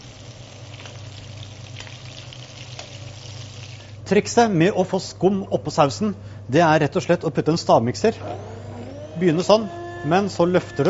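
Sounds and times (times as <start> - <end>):
butter sizzling in a pan while glazing cod loin: 0.0 - 3.9
speech: 4.1 - 8.5, 9.2 - 10.8.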